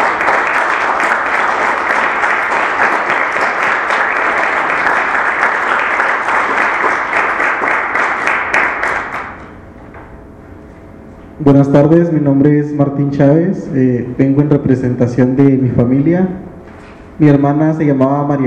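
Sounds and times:
audience applause at a public forum: 0.0s - 9.4s
speech: 11.5s - 16.5s, 17.2s - 18.4s.

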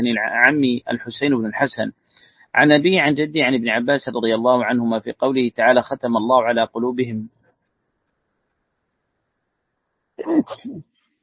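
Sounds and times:
speech: 0.0s - 7.4s, 10.2s - 10.9s
person sneezing during a religious lesson: 10.2s - 10.8s.

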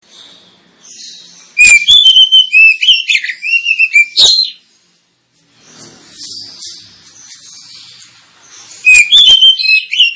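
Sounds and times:
Oriental magpie-robin song with whistled notes and buzzy chips: 0.0s - 4.7s, 5.8s - 10.1s.

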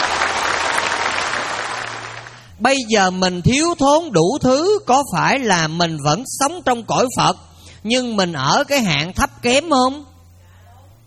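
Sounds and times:
audience applause at a Buddhist dharma talk: 0.0s - 2.5s
speech: 2.6s - 10.1s.

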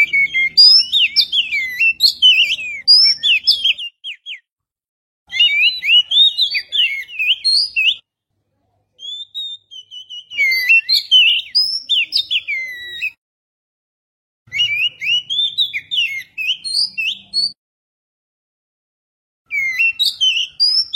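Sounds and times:
Oriental magpie-robin singing whistled phrases: 0.0s - 4.5s, 5.3s - 8.0s, 9.0s - 13.2s, 14.5s - 17.6s, 19.5s - 20.9s.

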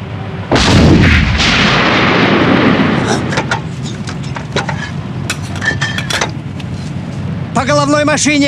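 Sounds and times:
artillery gun firing a shot at a T-72 tank: 0.5s - 3.8s
crackles and clatter: 0.6s - 7.3s
speech: 7.6s - 8.4s.

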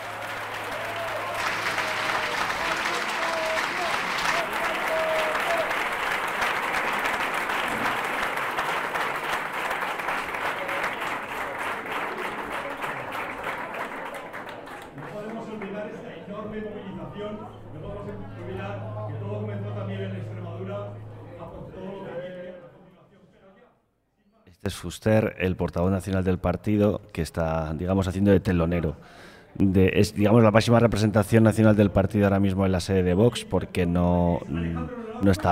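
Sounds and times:
crowd applause at a political party's headquarters on election night: 0.0s - 16.1s
speech: 24.7s - 35.5s.

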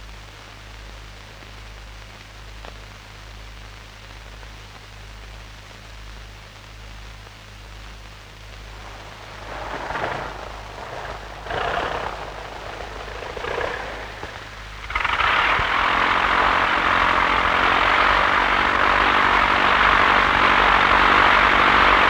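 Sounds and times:
airplane engine roar during takeoff from Sentani airfield by Lake Sentani: 8.5s - 22.0s.

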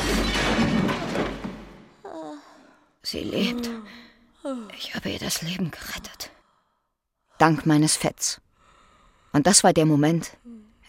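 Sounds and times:
wooden scaffolding boards crashing down onto a person: 0.0s - 2.0s
speech: 3.0s - 6.4s, 7.4s - 8.4s, 9.3s - 10.8s.

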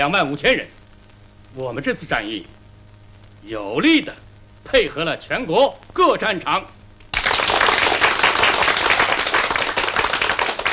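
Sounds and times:
speech: 0.0s - 0.8s, 1.5s - 2.6s, 3.4s - 6.8s
warm applause from a meeting crowd: 7.1s - 10.7s.

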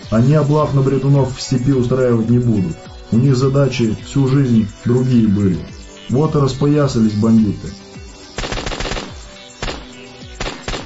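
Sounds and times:
speech: 0.1s - 7.8s
automatic gunfire: 8.4s - 10.8s.

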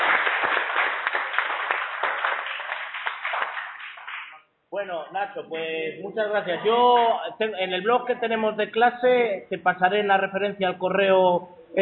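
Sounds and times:
audience applauding at the end of a talk: 0.0s - 4.4s
speech: 4.8s - 11.7s.

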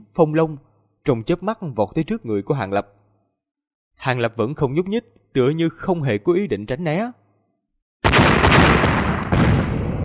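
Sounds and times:
speech: 0.2s - 3.0s, 4.0s - 7.2s
explosions sound effect: 8.0s - 10.0s.

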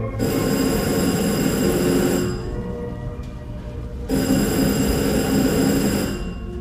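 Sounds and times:
telephone ringing with an electric bell tone: 0.2s - 2.9s, 4.1s - 6.5s.

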